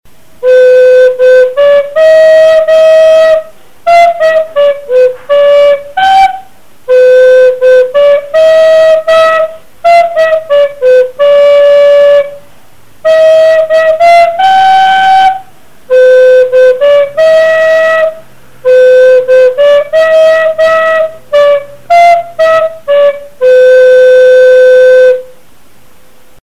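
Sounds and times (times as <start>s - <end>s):
flute: 0.4s - 12.4s, 13.0s - 25.4s.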